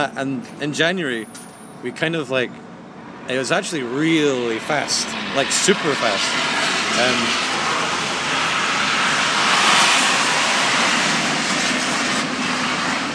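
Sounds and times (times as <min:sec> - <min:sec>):
speech: 0:00.0 - 0:02.7, 0:03.3 - 0:07.5
jet aircraft roaring overhead: 0:00.0 - 0:13.1.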